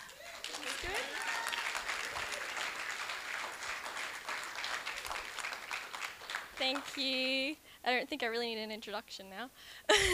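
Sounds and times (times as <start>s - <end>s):
cheers and whoops: 0.0s - 2.7s
crowd applauding: 0.0s - 7.2s
speech: 6.6s - 10.1s.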